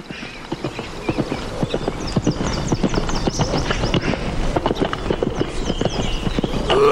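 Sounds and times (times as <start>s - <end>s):
horse hooves clip-clopping in a trotting pattern: 0.0s - 6.8s.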